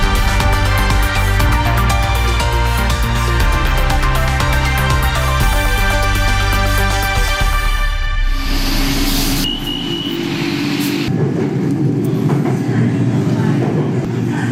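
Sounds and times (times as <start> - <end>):
high electrical whines of skytrain: 0.0 - 11.1
elevated skytrain rumbling 10 metres above the roads: 8.6 - 14.4.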